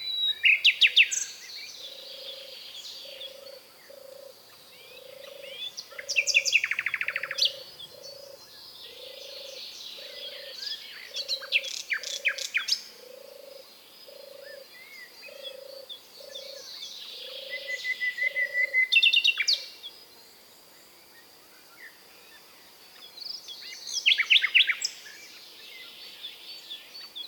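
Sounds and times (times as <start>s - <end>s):
common nightingale Luscinia megarhynchos singing: 0.0s - 19.9s, 22.9s - 27.2s
low regularly pulsing croak: 1.8s - 10.5s, 11.1s - 14.7s, 15.3s - 18.8s.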